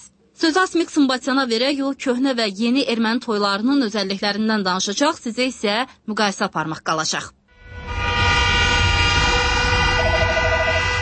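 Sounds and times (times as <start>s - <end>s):
speech: 0.4s - 7.4s
car horn sustained brassy blast for a wedding in Yerevan: 7.5s - 11.0s.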